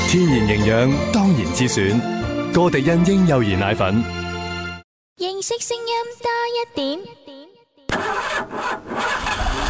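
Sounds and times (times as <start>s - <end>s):
speech: 0.1s - 4.2s, 5.2s - 7.3s
car engine starting before driving off: 7.9s - 9.6s.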